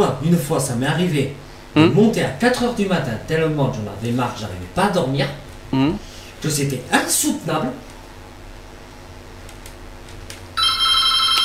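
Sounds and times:
speech: 0.0s - 7.9s
telephone ringing with a bright electronic tone: 10.6s - 11.4s.

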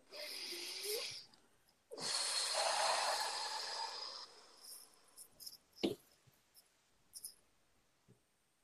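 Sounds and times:
deep inhale in a breathing exercise: 0.1s - 1.3s, 1.9s - 5.2s
long steady slow exhale: 0.1s - 1.3s, 1.9s - 4.9s.

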